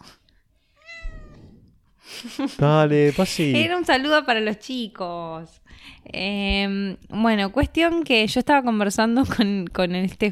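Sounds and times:
female cat meowing: 0.8 - 1.7
laughter: 2.1 - 3.8
speech: 2.2 - 10.3.

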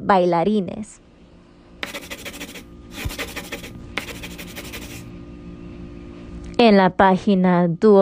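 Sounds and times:
speech: 0.1 - 1.0, 6.6 - 8.0
pencil scratching on paper: 1.8 - 5.0.

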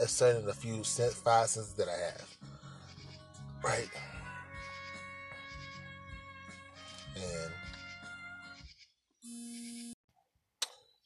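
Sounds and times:
speech: 0.0 - 2.3, 3.6 - 4.1
phone buzzing on vibrate with an incoming call: 9.2 - 10.0.

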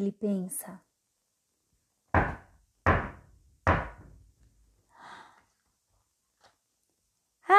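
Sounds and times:
speech: 0.0 - 0.9
loud heavy knocks on a door: 2.1 - 4.2.

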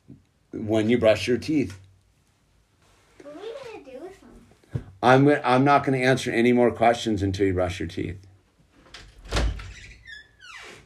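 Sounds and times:
speech: 0.6 - 1.8, 5.0 - 8.3
door opening with thump: 8.9 - 10.8.

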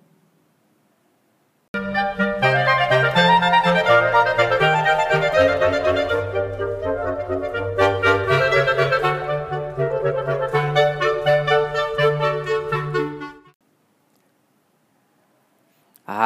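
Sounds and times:
woodwind instruments playing over a low bass line: 1.8 - 13.6.

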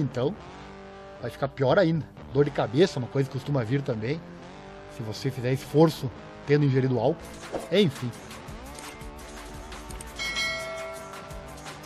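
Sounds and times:
speech: 0.0 - 0.6, 1.2 - 8.4
notification bell chime: 10.2 - 11.4.

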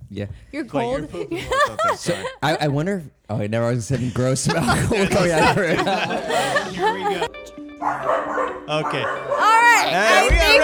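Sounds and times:
speech: 0.1 - 10.6
laughter: 1.1 - 2.8, 3.9 - 7.5
dogs barking and yipping: 7.8 - 10.1.

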